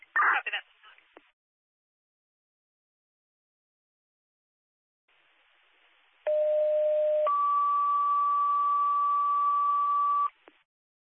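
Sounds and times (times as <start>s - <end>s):
faint radio static hiss: 0.0s - 1.3s, 5.1s - 10.6s
two-tone dispatch pager alert over a radio channel: 6.3s - 10.3s.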